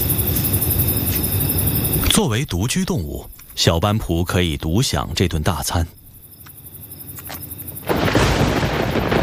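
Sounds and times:
faint insect-like chirring: 0.0 - 9.2
speech: 2.1 - 6.0
loud roll of thunder: 7.7 - 9.2.

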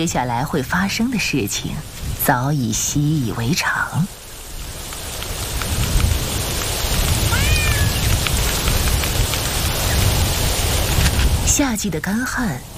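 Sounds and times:
speech: 0.0 - 4.2, 11.6 - 12.7
low distant rumble of thunder: 0.0 - 12.7
steady rain: 0.0 - 12.7
short cat meow: 7.2 - 8.1.

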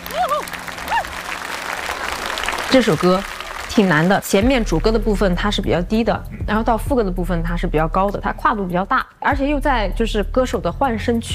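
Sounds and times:
crowd whooping cheers: 0.0 - 4.0
audience applause welcoming a singer at a televised music performance: 0.0 - 5.4
speech: 2.7 - 11.3.

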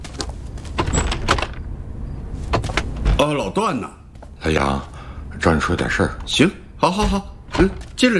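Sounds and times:
sharp clicks and rattling knocks from a door latch and handle: 0.7 - 1.7
low scrape of a door swinging open: 0.7 - 3.2
speech: 3.2 - 8.1.

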